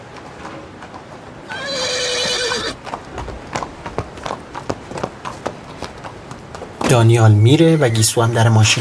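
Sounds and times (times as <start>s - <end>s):
clip-clopping hoofbeats of a horse ridden out of a stable: 0.0s - 6.9s
horse ridden out of a stable whinnying: 1.5s - 2.8s
speech: 6.9s - 8.7s.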